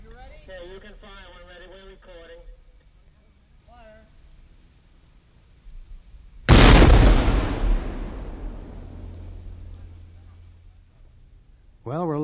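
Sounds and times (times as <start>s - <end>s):
speech: 0.7s - 2.5s, 11.9s - 12.2s
French cannon blast fired in a test: 6.5s - 10.1s.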